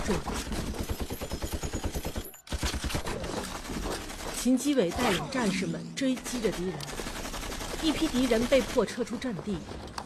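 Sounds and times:
machine gun firing rapid bursts during a battle: 0:00.0 - 0:04.7, 0:06.1 - 0:09.1
speech: 0:00.1 - 0:00.6, 0:04.4 - 0:07.1, 0:07.8 - 0:09.9.

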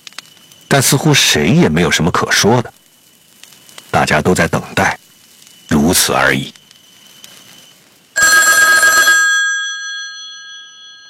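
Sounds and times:
speech: 0:00.7 - 0:02.8, 0:03.9 - 0:05.0, 0:05.9 - 0:06.6
telephone bell ringing in a metallic burst: 0:08.2 - 0:11.0.

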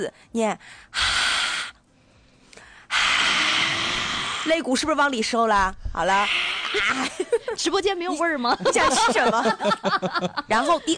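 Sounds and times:
speech: 0:00.0 - 0:01.2, 0:04.4 - 0:10.9
slow breathy exhale through an open mouth during a breathing exercise: 0:00.9 - 0:04.7, 0:06.2 - 0:07.1
laughter: 0:06.7 - 0:07.6, 0:08.4 - 0:10.9.

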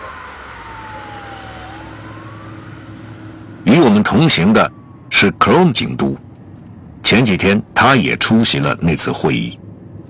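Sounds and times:
police siren wailing: 0:00.0 - 0:06.4
police car speeding across the River Thames and out of London: 0:00.0 - 0:10.0
speech: 0:03.8 - 0:06.2, 0:07.1 - 0:09.6.

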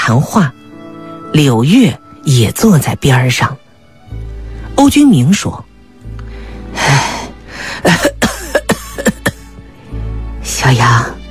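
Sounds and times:
speech: 0:00.1 - 0:00.6, 0:01.3 - 0:03.6, 0:04.8 - 0:05.7, 0:07.8 - 0:08.1, 0:10.6 - 0:11.2
gravely ill man coughing harsh chesty coughs inside a felt yurt: 0:07.9 - 0:09.5.

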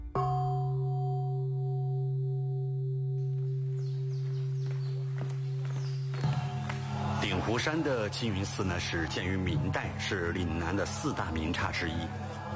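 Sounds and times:
large Buddhist temple bell struck, deep humming tone: 0:00.2 - 0:07.0
faint footsteps: 0:03.3 - 0:07.0
speech: 0:07.5 - 0:12.3.

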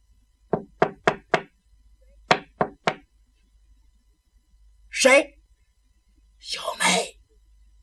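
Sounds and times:
knocking on a window: 0:00.5 - 0:01.5, 0:02.3 - 0:03.1
speech: 0:05.0 - 0:05.4, 0:06.4 - 0:07.2.

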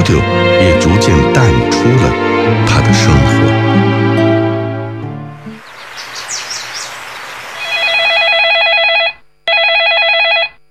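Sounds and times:
speech: 0:00.1 - 0:04.0
chirpy noise: 0:05.4 - 0:08.7
telephone ringing: 0:07.6 - 0:10.7.

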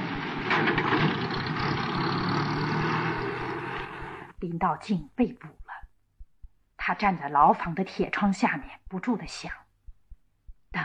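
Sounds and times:
small car engine rumbling: 0:00.0 - 0:04.4
speech: 0:04.4 - 0:05.6, 0:06.9 - 0:09.6.

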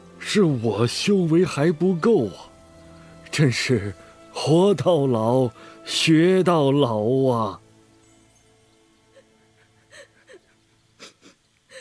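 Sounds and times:
speech: 0:00.3 - 0:02.5, 0:03.4 - 0:07.6
woman crying and sobbing: 0:09.0 - 0:11.7.

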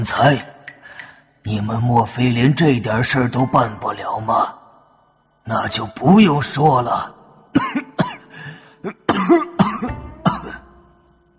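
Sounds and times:
speech: 0:00.0 - 0:00.6, 0:01.4 - 0:04.6, 0:05.5 - 0:07.8, 0:08.8 - 0:10.0
elderly man coughing harshly: 0:07.5 - 0:10.7
elderly man clearing throat: 0:07.6 - 0:10.6.

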